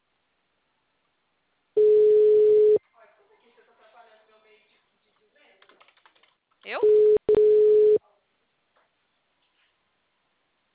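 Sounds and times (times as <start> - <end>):
telephone tone as a call is dialed: 1.8 - 2.8, 6.8 - 8.0.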